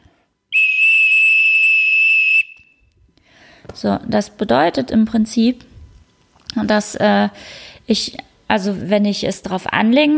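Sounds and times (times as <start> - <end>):
long shrill whistle blast: 0.5 - 3.0
speech: 3.8 - 5.7, 6.6 - 10.1.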